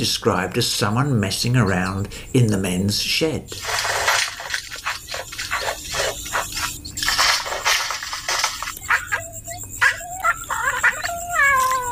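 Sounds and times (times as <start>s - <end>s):
speech: 0.0s - 4.0s
busy rustling outdoor background: 0.0s - 11.8s
bowerbird in a River Red Gum mimicking a cat's meow: 8.8s - 11.8s.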